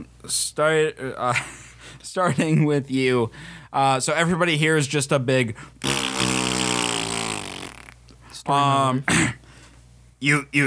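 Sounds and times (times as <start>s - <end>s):
speech: 0.2s - 5.9s, 8.4s - 9.4s, 10.2s - 10.6s
voice imitating a fart with a buzzy mouth-fart noise: 5.8s - 8.1s.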